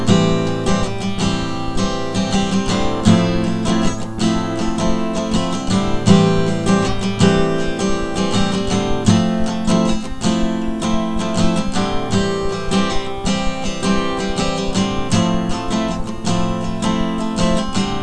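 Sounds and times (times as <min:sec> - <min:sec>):
A minor seventh and F major seventh chords: 0:00.0 - 0:18.0.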